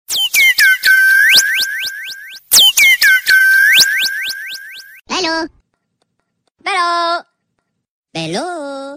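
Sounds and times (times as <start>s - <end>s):
bird ringtone on Android phone: 0.4s - 5.0s.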